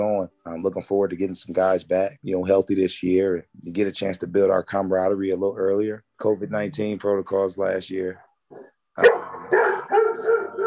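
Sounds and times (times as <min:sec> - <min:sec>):
speech: 0:00.0 - 0:08.3, 0:09.0 - 0:09.2
dog barking indoors: 0:09.0 - 0:10.6.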